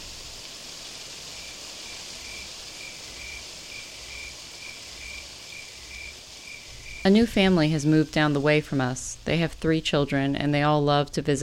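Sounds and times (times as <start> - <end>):
constant airy hiss: 0.0 - 10.9
crickets chirping at night: 1.3 - 8.5
speech: 7.0 - 11.4.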